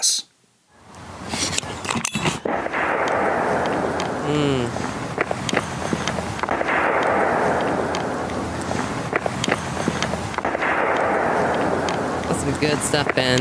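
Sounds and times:
dense rumbling background: 0:00.8 - 0:13.3
Civil War era cannon blasts echoing: 0:02.4 - 0:13.3
short hum from someone: 0:04.2 - 0:04.8
speech: 0:04.3 - 0:04.9, 0:12.6 - 0:13.3.

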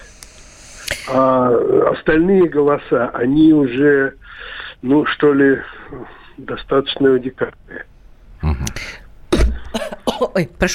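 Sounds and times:
speech: 0:01.1 - 0:07.9, 0:10.2 - 0:10.7
woman coughing after choking: 0:09.3 - 0:10.4.

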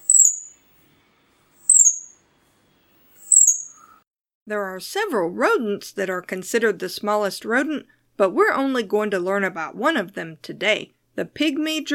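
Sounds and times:
pale-billed flowerpecker calling: 0:00.0 - 0:00.6, 0:01.6 - 0:02.2, 0:03.1 - 0:04.0
speech: 0:04.5 - 0:11.9.

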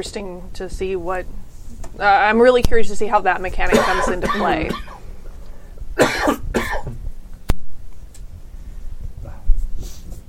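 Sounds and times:
speech: 0:00.0 - 0:05.0
person coughing: 0:03.7 - 0:05.0, 0:06.0 - 0:07.0.

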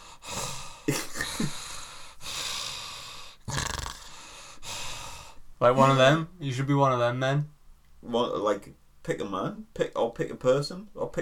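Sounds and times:
man imitating heavy wheezing breathing of an overweight person: 0:00.0 - 0:05.4
speech: 0:05.6 - 0:11.2.

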